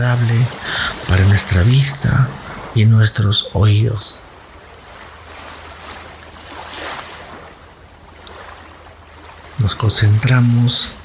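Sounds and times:
speech: 0.0 - 4.3, 9.7 - 11.0
low constant rumble: 0.0 - 5.2, 9.6 - 11.0
ocean waves breaking on the shore: 0.4 - 11.0.

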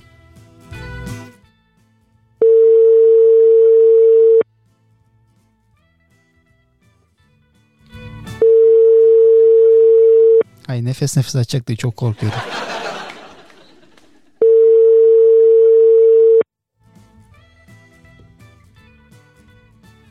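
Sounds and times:
phone ringback tone as a phone call is placed: 2.4 - 4.4, 8.4 - 10.4, 14.4 - 16.4
speech: 10.8 - 12.7
laughter: 12.0 - 14.4.

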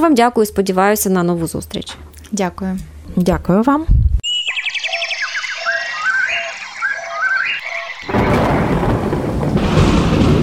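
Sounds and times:
speech: 0.0 - 4.0
warbling chirping tones: 4.2 - 9.3
loud thunder clap with roaring rumble: 5.9 - 10.4.

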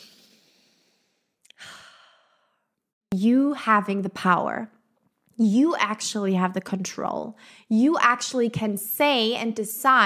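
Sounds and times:
deep breath taken during a calming exercise: 0.0 - 2.8
speech: 3.1 - 4.8, 5.4 - 10.0.

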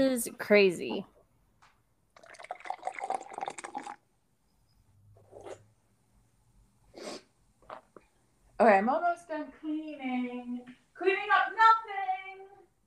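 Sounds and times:
speech: 0.0 - 1.1, 8.6 - 12.2
drink pouring: 2.1 - 4.1.

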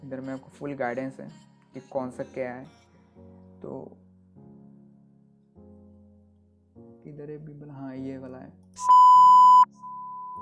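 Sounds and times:
speech: 0.1 - 4.0, 7.0 - 9.1
electronic censor beep: 8.8 - 10.4
faint continuing tone: 8.8 - 10.4.

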